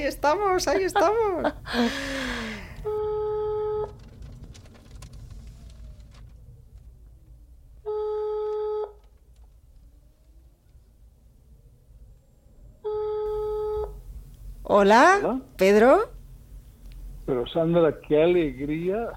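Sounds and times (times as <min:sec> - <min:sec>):
speech: 0:00.0 - 0:02.3, 0:14.8 - 0:16.1, 0:17.3 - 0:19.1
low rumbling inside a car: 0:00.0 - 0:07.8, 0:10.7 - 0:19.1
phone ringback tone from a call to a mobile phone inside a car: 0:02.9 - 0:03.9, 0:07.9 - 0:09.0, 0:12.8 - 0:14.0.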